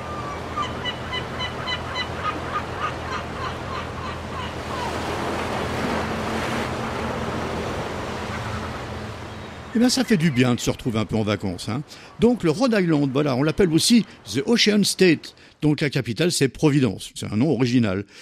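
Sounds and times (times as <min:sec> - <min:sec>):
seagulls calling on the Rhode Island coast: 0:00.0 - 0:14.4
ocean waves on the Rhode Island coast: 0:00.0 - 0:16.1
speech: 0:09.8 - 0:18.2.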